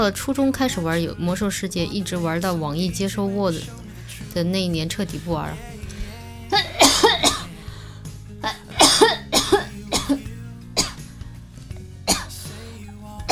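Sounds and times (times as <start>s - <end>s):
speech: 0.0s - 5.7s
coughing from a suddenly itchy throat: 6.5s - 7.5s, 8.4s - 11.1s, 12.1s - 12.4s.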